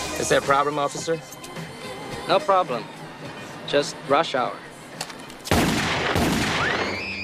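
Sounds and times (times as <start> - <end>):
speech: 0.2 - 1.4, 2.3 - 4.7
gunshots in a film scene: 5.5 - 7.0.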